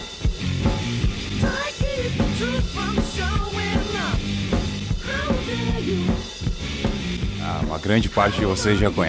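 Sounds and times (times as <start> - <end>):
raw garage rock song with drums, distorted guitar and wailing vocal: 0.0 - 9.0
speech: 7.8 - 9.0.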